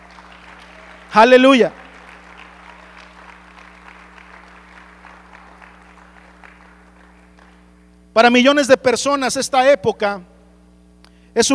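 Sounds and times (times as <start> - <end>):
audience applauding: 0.0 - 7.9
low constant hum: 0.0 - 11.5
speech: 1.2 - 1.8, 8.2 - 10.3, 11.4 - 11.5.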